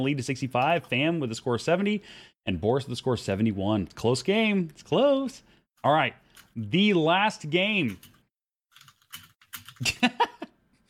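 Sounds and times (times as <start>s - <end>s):
speech: 0.0s - 8.1s, 9.8s - 10.4s
keystrokes clattering on a computer keyboard: 7.8s - 9.9s.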